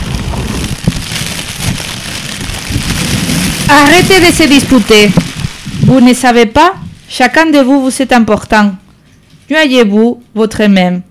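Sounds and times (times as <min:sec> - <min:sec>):
rain falling: 0:00.0 - 0:07.2
speech: 0:03.7 - 0:05.2, 0:05.9 - 0:08.8, 0:09.5 - 0:11.0.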